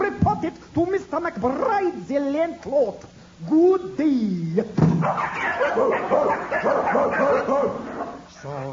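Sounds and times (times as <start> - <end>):
speech: 0.4 - 8.7
several dogs barking and yipping in a building: 5.0 - 8.6.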